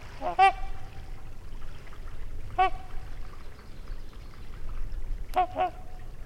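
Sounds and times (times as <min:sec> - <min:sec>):
trumpeter swan trumpeting near a lake in Wisconsin: 0:00.2 - 0:01.2, 0:02.5 - 0:03.2, 0:05.3 - 0:06.1.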